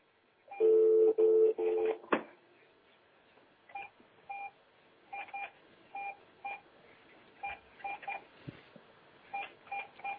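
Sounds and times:
telephone ringing tone: 0.6 - 2.0.

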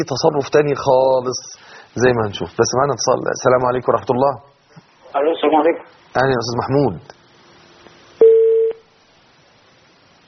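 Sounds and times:
speech: 0.0 - 4.5, 5.1 - 7.2
telephone tone after a dropped call: 8.2 - 8.8.

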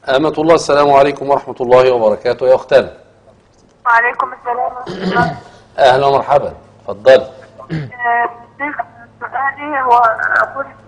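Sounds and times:
speech: 0.1 - 3.0, 3.9 - 10.8
television voices in background of phone line: 3.3 - 5.5, 7.2 - 10.8.

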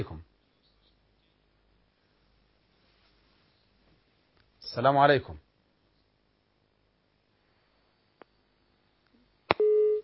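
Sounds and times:
speech: 4.8 - 5.4
phone line click: 9.5 - 10.0
busy tone after a phone call is cut off: 9.6 - 10.0.

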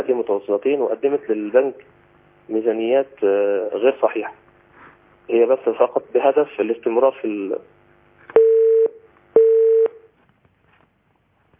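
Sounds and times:
speech: 0.0 - 4.4, 5.3 - 7.8
telephone tones as a dropped call is redialed: 8.3 - 10.1.

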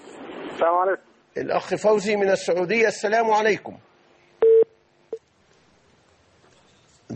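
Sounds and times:
speech: 0.6 - 3.9
telephone beep on a phone line after a call drops: 4.4 - 4.7.

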